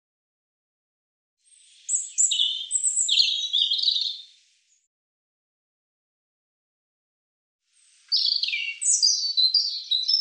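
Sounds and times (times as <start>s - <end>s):
European robin song: 1.4s - 4.8s, 7.7s - 10.1s.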